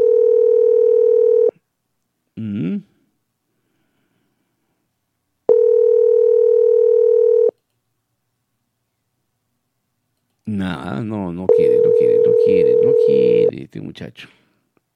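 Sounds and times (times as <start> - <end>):
telephone tones from an outgoing call: 0.0 - 1.5, 5.5 - 7.6, 11.5 - 13.5
speech: 10.5 - 14.4.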